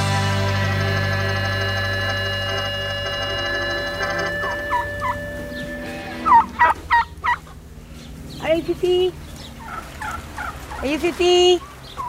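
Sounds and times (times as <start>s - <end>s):
steady low hum: 0.2s - 12.0s
chickens on a small farm clucking: 3.8s - 7.6s, 9.3s - 11.0s, 11.6s - 12.0s.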